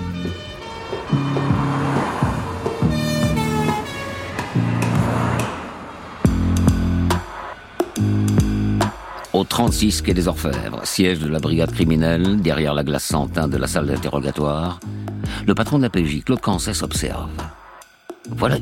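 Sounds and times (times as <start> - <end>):
police car siren wailing: 0.0 - 9.1
traffic rumble: 0.0 - 17.7
speech: 9.5 - 17.6, 18.3 - 18.5.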